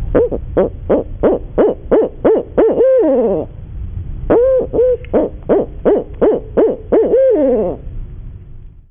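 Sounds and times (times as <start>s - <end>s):
barred owl hooting: 0.1s - 3.5s, 4.3s - 7.8s.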